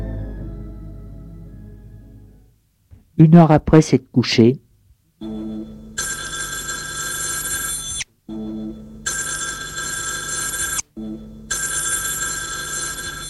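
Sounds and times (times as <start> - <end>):
speech: 3.2 - 4.6
telephone bell ringing: 6.0 - 8.1, 9.1 - 10.9, 11.5 - 13.2.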